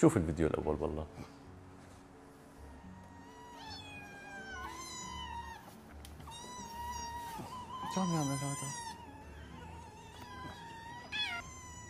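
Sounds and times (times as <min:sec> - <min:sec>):
speech: 0:00.0 - 0:01.4, 0:07.9 - 0:08.9
cat meowing: 0:02.7 - 0:11.8.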